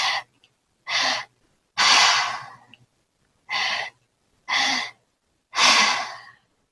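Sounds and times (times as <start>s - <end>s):
person breathing in to belly and chest and exhaling through mouth: 0.0s - 0.3s, 0.9s - 2.7s, 3.5s - 6.5s.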